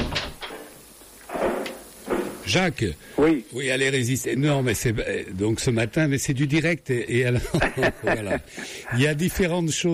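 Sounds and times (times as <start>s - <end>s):
studio door opening or closing: 0.0s - 0.6s, 1.3s - 2.4s
speech: 2.5s - 9.9s
laughter: 7.3s - 8.8s.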